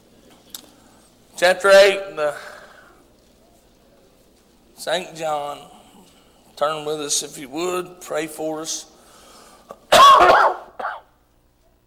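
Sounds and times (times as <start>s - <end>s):
speech: 1.4s - 2.5s, 4.8s - 5.8s, 6.6s - 8.9s
coughing: 9.7s - 11.2s
throat clearing: 9.7s - 11.2s.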